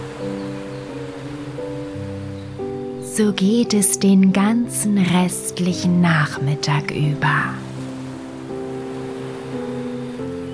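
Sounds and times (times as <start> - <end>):
gentle sustained musical chords: 0.0 - 10.5
ocean surf washing: 0.0 - 10.5
speech: 3.2 - 7.7.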